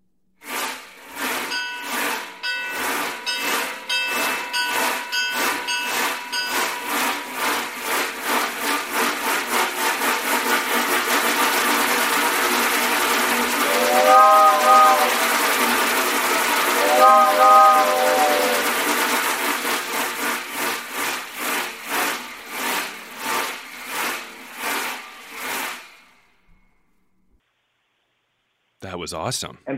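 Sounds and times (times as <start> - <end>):
mechanical sound-effect train rattling past: 0.7 - 26.4
train whistle-like tones: 13.4 - 19.1
speech: 29.1 - 29.7.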